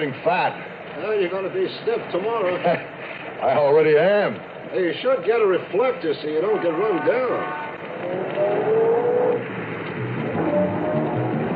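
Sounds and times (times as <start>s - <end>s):
speech: 0.0s - 8.2s
police car engine pulling away and driving off: 7.7s - 11.5s.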